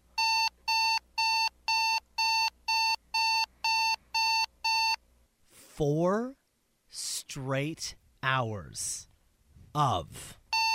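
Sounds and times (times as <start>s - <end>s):
alarm clock beeping with loud electronic bursts: 0.2s - 5.0s, 10.5s - 10.7s
speech: 5.8s - 9.1s, 9.8s - 10.4s.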